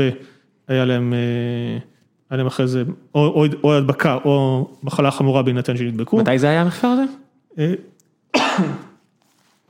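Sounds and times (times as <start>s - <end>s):
speech: 0.0s - 7.9s, 8.5s - 8.9s
person wearing a mask coughing: 8.3s - 9.1s.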